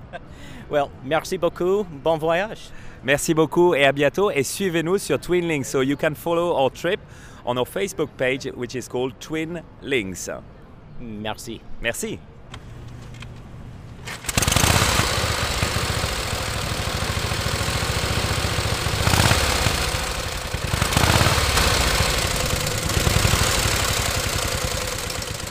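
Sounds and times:
speech: 0.1s - 12.3s
1918 Harley-Davidson motorcycle engine running: 14.1s - 25.4s.

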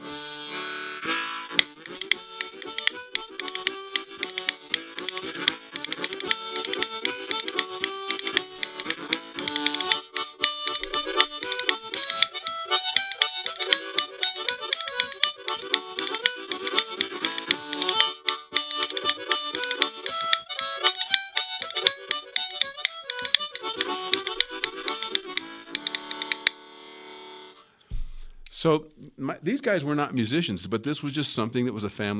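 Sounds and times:
harmonica melody: 0.0s - 27.8s
cow rib rhythm bones clicking: 1.5s - 26.6s
speech: 28.6s - 32.1s.

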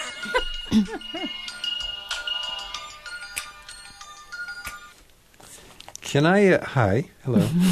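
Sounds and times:
cell phone ringtone playing a bright melodic electronic tune: 0.0s - 5.0s
speech: 0.2s - 1.4s, 6.1s - 7.7s.

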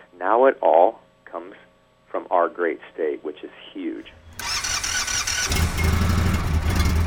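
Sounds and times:
speech: 0.2s - 4.4s, 5.4s - 5.9s
motorcycle engine running on a factory road simulator: 4.1s - 7.0s.

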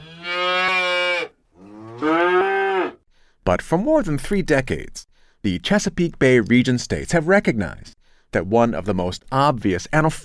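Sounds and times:
cow mooing: 0.0s - 3.0s
speech: 3.5s - 10.2s.

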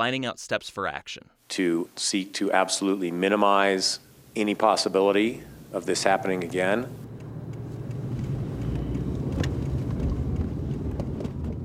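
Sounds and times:
speech: 0.0s - 7.1s
car driving around town, road-and-engine rumble: 4.0s - 11.6s
wind buffeting: 5.4s - 11.6s.

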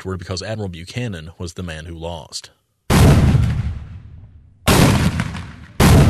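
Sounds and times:
speech: 0.0s - 2.6s
cannon fire in a staged battle reenactment: 2.9s - 6.0s
musket fire in a staged battle reenactment: 2.9s - 6.0s.

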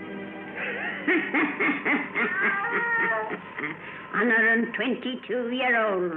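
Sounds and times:
laughter: 0.6s - 4.0s
speech: 1.1s - 6.1s
black cat meowing: 2.2s - 3.4s.

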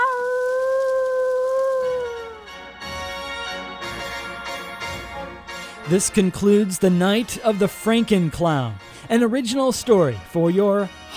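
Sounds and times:
dog howling: 0.0s - 2.4s
busier sound: 0.0s - 10.0s
speech: 5.9s - 11.1s.

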